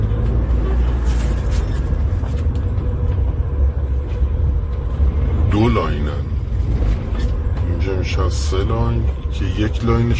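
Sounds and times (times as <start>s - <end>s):
idling car engines queued at a gas station: 0.0s - 10.1s
traffic: 0.0s - 10.1s
speech: 8.3s - 10.1s.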